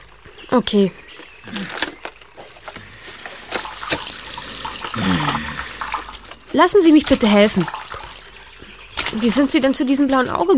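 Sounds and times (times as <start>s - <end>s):
speech: 0.6s - 1.8s, 6.6s - 7.8s, 9.2s - 10.5s
water spilling from a bucket: 3.0s - 9.9s
vocal sounds: 4.2s - 6.1s.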